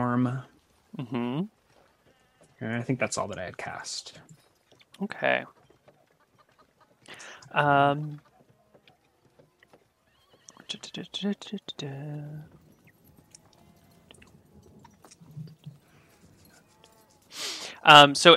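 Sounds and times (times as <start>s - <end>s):
horse hooves pattering: 0.0s - 18.3s
speech: 0.2s - 1.6s, 2.6s - 4.4s, 5.0s - 5.6s, 7.1s - 8.3s, 10.7s - 12.6s, 17.8s - 18.3s
hard-ridden horse whinnying loudly: 10.0s - 10.7s, 12.6s - 17.6s.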